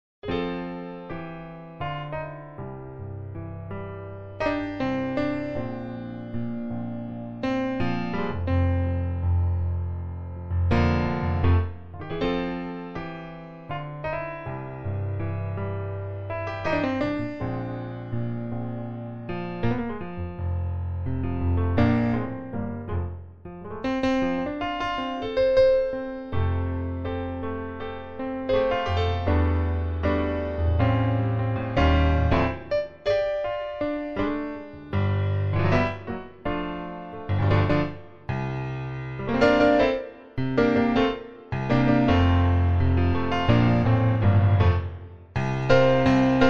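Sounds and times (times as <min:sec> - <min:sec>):
grand piano note C5: 0:02.0 - 0:46.4.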